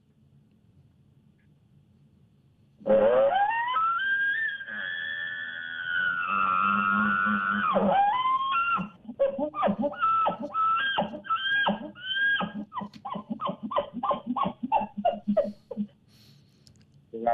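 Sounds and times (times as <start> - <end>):
person imitating a bull elk buzz bugle: 2.8 - 15.9.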